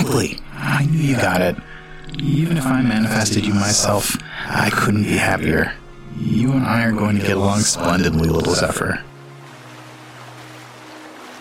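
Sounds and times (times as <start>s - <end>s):
speech: 0.1s - 9.1s
water lapping around a drifting ice floe in a large body of water: 8.3s - 11.3s.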